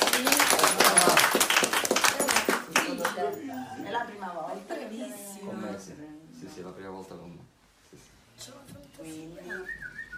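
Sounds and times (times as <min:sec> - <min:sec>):
group of many people clapping: 0:00.0 - 0:03.5
speech: 0:05.9 - 0:10.0.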